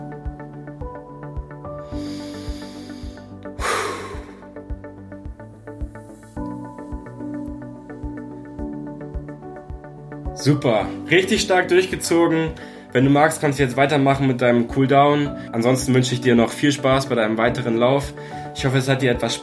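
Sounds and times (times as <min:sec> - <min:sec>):
steady rhythmic music: 0:00.0 - 0:19.4
deep breath in and out during a running interval workout: 0:01.8 - 0:04.7, 0:12.6 - 0:12.9
speech: 0:10.4 - 0:19.4.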